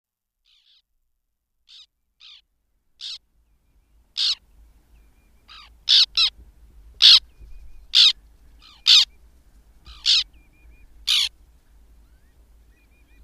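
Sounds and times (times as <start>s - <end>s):
faint soft bird calls: 0.4s - 0.9s, 1.6s - 6.4s, 7.0s - 13.2s
white-winged tern harsh rasping calls: 1.7s - 2.4s, 3.0s - 3.2s, 4.2s - 4.4s, 5.5s - 6.4s, 7.0s - 7.2s, 7.9s - 9.1s, 9.9s - 10.3s, 11.1s - 11.3s.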